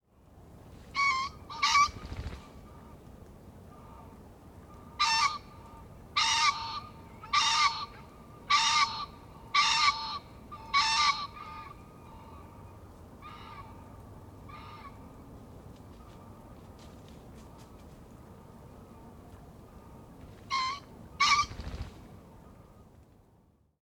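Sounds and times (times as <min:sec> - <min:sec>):
green pheasant calling: 0:01.0 - 0:03.0, 0:04.7 - 0:13.9, 0:19.7 - 0:22.8.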